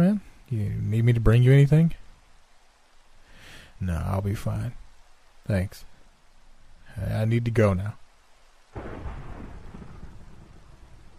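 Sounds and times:
speech: 0:00.0 - 0:02.0, 0:03.8 - 0:04.8, 0:05.5 - 0:05.9, 0:07.0 - 0:08.0
steady rainfall: 0:00.0 - 0:11.1
deep roll of thunder: 0:08.7 - 0:11.1.

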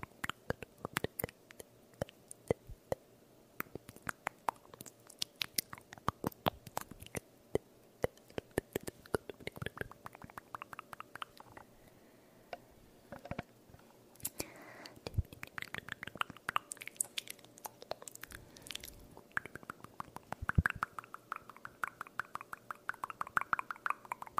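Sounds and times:
close-up wet mouth clicks and pops: 0:00.0 - 0:02.6, 0:03.6 - 0:11.7, 0:15.1 - 0:24.3.

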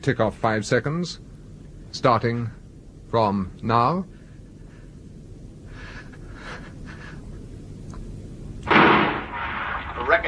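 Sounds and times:
speech: 0:00.0 - 0:01.3, 0:01.9 - 0:04.2
gunshot: 0:08.7 - 0:10.2.

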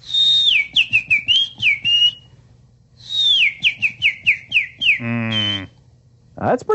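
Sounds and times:
man whistling an imitation birdsong: 0:00.0 - 0:02.4, 0:03.0 - 0:05.8.

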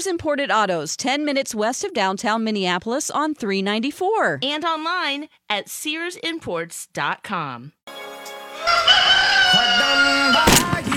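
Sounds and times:
speech: 0:00.0 - 0:08.0
rooster crowing: 0:08.6 - 0:10.5.

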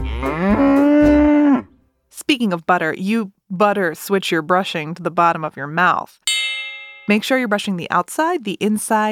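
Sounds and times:
cow mooing: 0:00.0 - 0:01.7
speech: 0:02.3 - 0:06.4, 0:07.1 - 0:09.0.

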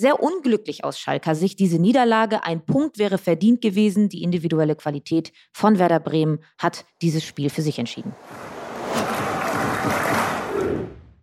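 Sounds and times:
speech: 0:00.0 - 0:09.1
huge stadium crowd cheering and shouting in celebration of a goal: 0:08.1 - 0:11.1.

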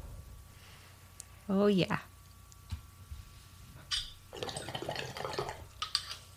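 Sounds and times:
speech: 0:01.5 - 0:02.1
water bubbling and gurgling in a bong: 0:04.3 - 0:05.7.

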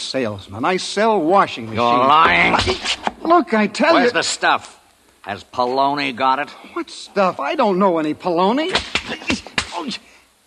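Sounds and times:
speech: 0:00.1 - 0:10.1
sharp slaps to the face of someone being questioned: 0:08.7 - 0:09.9.

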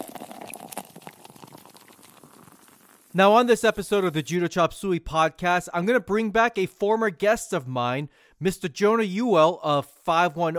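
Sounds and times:
fizzy drink being poured into a glass: 0:00.0 - 0:03.2
speech: 0:03.1 - 0:10.5.

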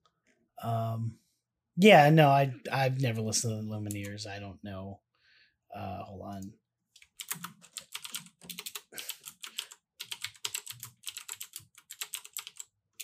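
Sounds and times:
speech: 0:00.6 - 0:01.2, 0:01.8 - 0:05.0, 0:05.7 - 0:06.6, 0:07.3 - 0:07.6
typing on a computer keyboard into an online document: 0:07.0 - 0:13.0.

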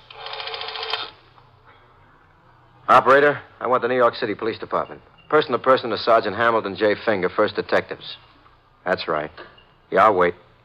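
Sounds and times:
rotary telephone dial turned by a thumb in an office: 0:00.0 - 0:01.2
speech: 0:02.9 - 0:10.4.

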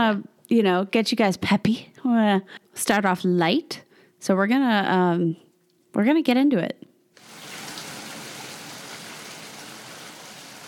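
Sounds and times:
speech: 0:00.0 - 0:05.4, 0:06.0 - 0:06.8
rain falling outside: 0:07.2 - 0:10.6.

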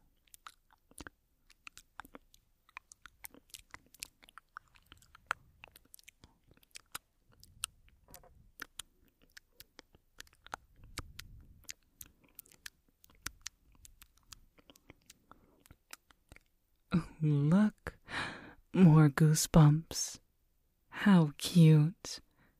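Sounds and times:
small wet mouth clicks, smacks and tongue pops: 0:00.2 - 0:16.5
speech: 0:17.2 - 0:17.7, 0:18.8 - 0:20.2, 0:21.0 - 0:22.2.

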